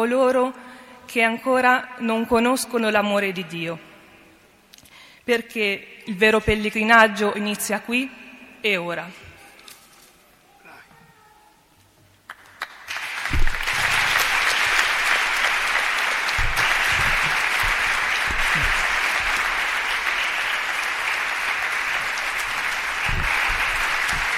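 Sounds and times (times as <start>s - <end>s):
speech: 0.0s - 3.9s, 5.3s - 9.2s
audience applause at a religious pilgrimage gathering in honour of the Virgin: 12.3s - 24.3s.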